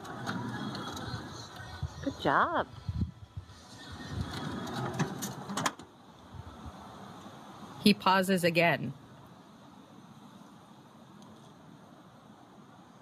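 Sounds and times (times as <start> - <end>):
van sliding door opening and closing: 0.0 - 1.6, 3.5 - 6.0
mechanical rumble: 0.0 - 5.6
speech: 2.2 - 2.8, 7.9 - 9.0.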